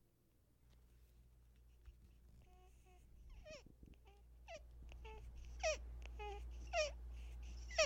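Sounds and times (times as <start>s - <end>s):
quiet hum: 0.0s - 7.8s
three-week-old baby breathing while drinking milk: 5.0s - 7.8s.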